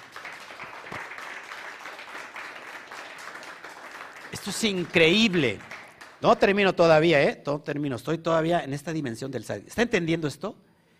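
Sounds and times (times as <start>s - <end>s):
audience applause: 0.0s - 6.2s
speech: 4.4s - 10.6s.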